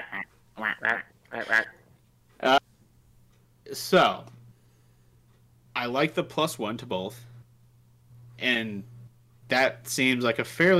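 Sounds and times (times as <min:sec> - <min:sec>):
person imitating duck quacks: 0:00.0 - 0:01.8
speech: 0:00.6 - 0:01.8, 0:02.4 - 0:02.6, 0:03.8 - 0:04.3, 0:05.8 - 0:07.3, 0:08.4 - 0:08.9, 0:09.5 - 0:10.7.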